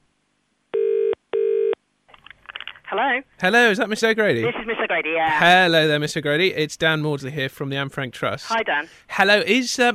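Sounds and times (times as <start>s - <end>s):
telephone ringback tone of a call to a school: 0.8s - 1.8s
faint rustling noise as the telephone line picks up: 2.1s - 3.2s
speech: 2.9s - 9.9s.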